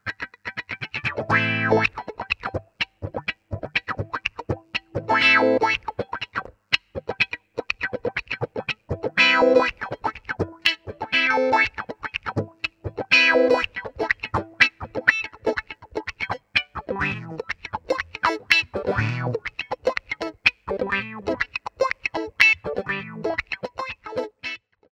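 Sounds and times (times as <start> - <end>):
wah wah sound: 0.9 - 6.3, 7.9 - 24.6.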